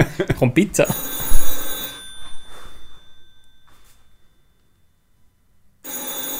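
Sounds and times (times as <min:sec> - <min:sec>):
speech: 0:00.0 - 0:01.2
landline telephone bell ringing: 0:00.8 - 0:04.6, 0:05.8 - 0:06.3.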